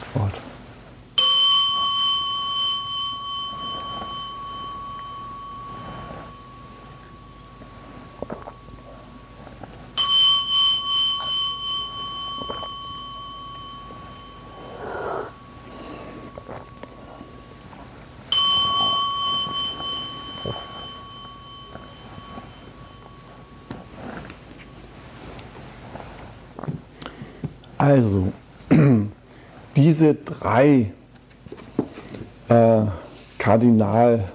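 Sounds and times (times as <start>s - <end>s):
bell being struck: 1.2s - 26.1s
speech: 27.9s - 28.3s, 29.9s - 31.0s, 32.5s - 34.3s.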